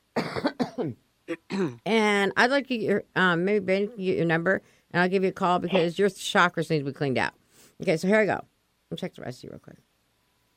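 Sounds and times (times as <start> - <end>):
harsh coughing: 0.2 - 1.8
speech: 0.8 - 9.9.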